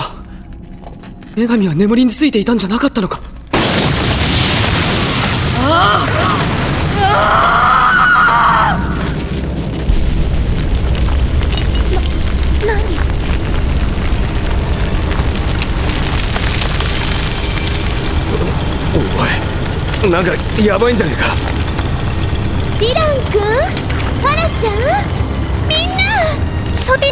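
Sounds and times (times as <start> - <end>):
earthquake rumbling with deep booming and crumbling: 0.0 - 27.1
speech: 1.4 - 3.3, 7.2 - 7.6, 20.0 - 21.4, 22.8 - 25.2, 25.8 - 27.1
high wailing cries: 5.6 - 9.1.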